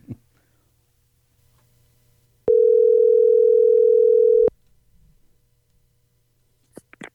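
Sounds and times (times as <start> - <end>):
telephone dial tone while a number is dialed: 2.5 - 4.5.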